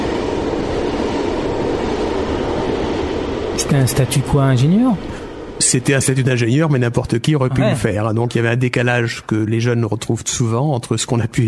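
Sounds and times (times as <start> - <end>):
train rolling along a railway line: 0.0 - 7.6
speech: 3.6 - 11.4.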